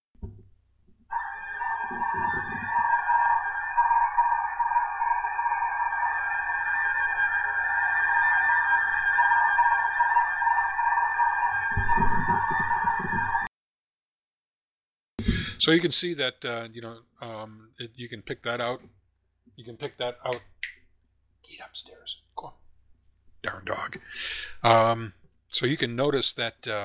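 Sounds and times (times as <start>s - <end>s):
narrow-band digital-mode radio signal of the ticker-tape text type: 1.1s - 13.5s
speech: 15.6s - 19.0s, 19.6s - 20.5s, 21.5s - 22.6s, 23.4s - 26.8s.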